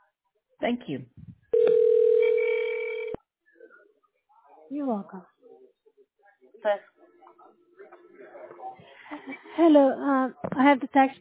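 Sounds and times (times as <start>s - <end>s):
speech: 0.6s - 1.8s, 4.7s - 5.3s, 6.6s - 6.9s, 9.1s - 11.2s
long electronic telephone tone of a call being placed: 1.6s - 3.2s.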